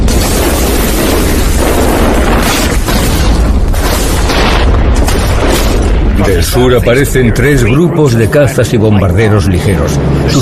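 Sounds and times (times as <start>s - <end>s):
wartime artillery barrage of guns, infantry cannons, mortars, tanks and tank destroyers: 0.0s - 6.6s
speech: 6.3s - 10.4s.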